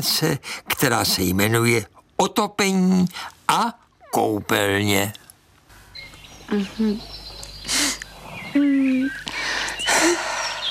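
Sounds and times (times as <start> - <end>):
speech: 0.0 - 5.2, 6.5 - 7.8, 8.5 - 9.4
person imitating birds singing in a comedy sketch: 6.4 - 10.6.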